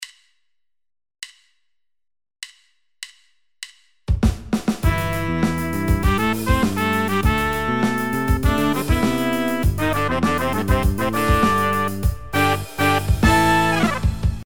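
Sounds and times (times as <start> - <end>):
pops horn section playing: 4.8 - 14.4.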